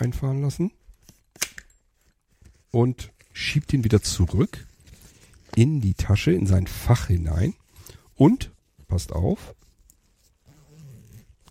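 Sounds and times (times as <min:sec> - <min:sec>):
speech: 0:00.0 - 0:00.8, 0:02.7 - 0:04.7, 0:05.6 - 0:07.6, 0:08.2 - 0:09.6
zipper closing on a bag: 0:10.3 - 0:11.4.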